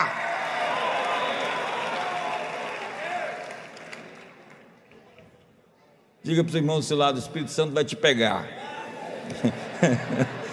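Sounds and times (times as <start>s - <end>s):
church audience at a worship service cheering and shouting: 0.0s - 3.7s
clapping: 1.0s - 4.8s
speech: 6.2s - 8.7s, 9.4s - 10.4s
laughter: 8.9s - 10.5s.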